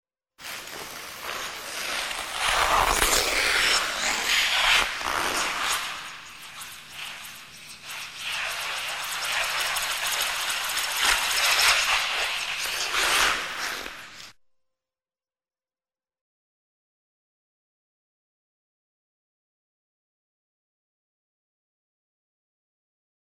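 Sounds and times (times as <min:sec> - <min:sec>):
ice skates in a long spin: 0:00.4 - 0:14.3.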